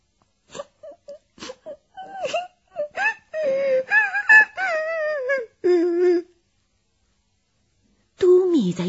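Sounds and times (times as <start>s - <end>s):
girl crying while leaning against a wooden crate: 0.6s - 6.4s.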